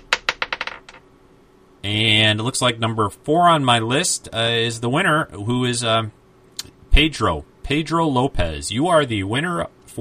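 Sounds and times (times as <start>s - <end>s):
twelve-sided die clattering across a hard surface: 0.0s - 1.0s
speech: 1.8s - 6.2s, 7.0s - 9.9s.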